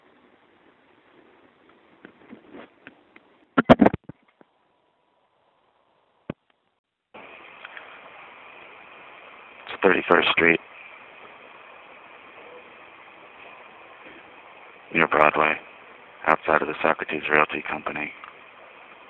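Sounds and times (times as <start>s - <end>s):
elevated train roaring overhead: 7.2s - 19.0s
speech: 9.8s - 10.6s, 15.3s - 15.7s, 16.5s - 18.2s.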